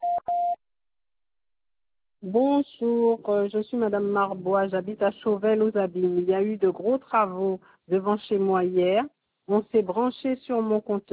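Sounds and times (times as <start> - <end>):
answering machine beeps: 0.0 - 0.6
speech: 2.2 - 11.1.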